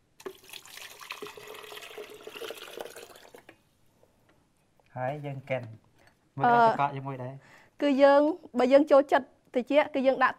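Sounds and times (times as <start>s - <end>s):
coconut water with pieces of coconut flesh pouring into a bowl: 0.2s - 3.6s
speech: 5.0s - 10.3s.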